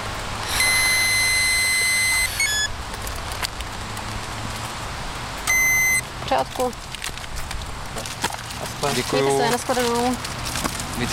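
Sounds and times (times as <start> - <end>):
low outdoor traffic rumble at Červenohorské sedlo in Czech Republic: 0.0 - 11.1
high electronic tone of a police breathalyzer: 0.4 - 2.8, 5.5 - 6.0
short beeps of a police breathalyzer: 0.5 - 2.7, 5.5 - 6.0
speech: 6.3 - 7.0, 8.8 - 10.3, 11.0 - 11.1.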